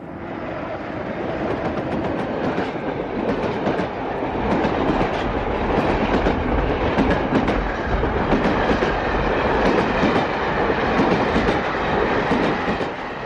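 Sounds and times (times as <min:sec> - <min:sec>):
express train to Dublin rumbling along the rails: 0:00.0 - 0:13.2
train wheels clickety-clack: 0:01.4 - 0:13.2.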